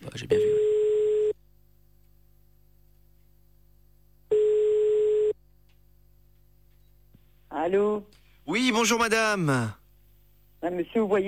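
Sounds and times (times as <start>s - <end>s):
speech: 0.1s - 0.7s, 7.7s - 9.8s, 10.6s - 11.2s
ringing tone of an outgoing telephone call: 0.4s - 1.4s, 4.3s - 5.4s.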